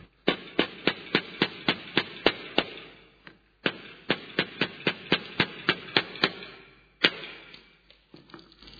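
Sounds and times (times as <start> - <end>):
hammer driving nails into wood: 0.2 - 3.0, 3.6 - 7.8.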